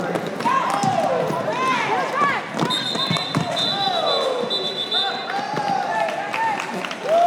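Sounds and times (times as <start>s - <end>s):
crowd cheering and yelling at a women's roller derby bout: 0.5s - 7.2s
sustained high whistle-like tone: 2.7s - 5.2s.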